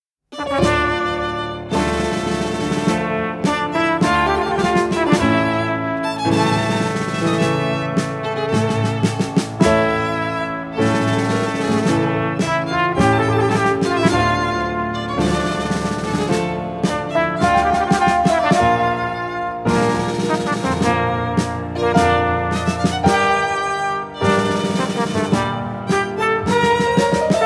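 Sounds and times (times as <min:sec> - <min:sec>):
piano: 0:00.2 - 0:27.4
flugelhorn: 0:00.3 - 0:27.4
violin: 0:00.3 - 0:27.4.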